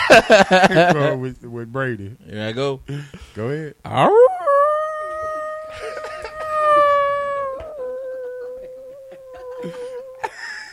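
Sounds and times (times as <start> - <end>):
laughter: 0.0 - 1.2, 5.7 - 6.8
speech: 0.1 - 4.4
wolf howling: 4.0 - 10.3.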